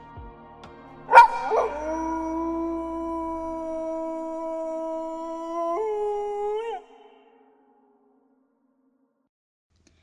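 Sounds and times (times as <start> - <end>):
wolf howling: 1.1 - 7.3.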